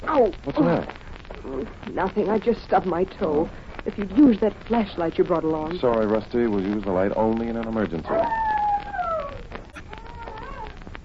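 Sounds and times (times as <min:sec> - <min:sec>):
speech: 0:00.2 - 0:08.4
dog howling: 0:08.0 - 0:10.9.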